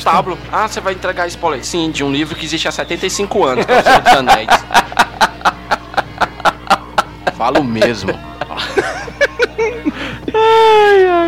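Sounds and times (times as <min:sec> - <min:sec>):
speech: 0:00.0 - 0:05.2, 0:07.4 - 0:08.8
laughter: 0:03.2 - 0:11.2
person fake-crying with short choppy whimpering sobs: 0:09.6 - 0:11.2
person fake-crying with long drawn-out wail: 0:09.7 - 0:11.2.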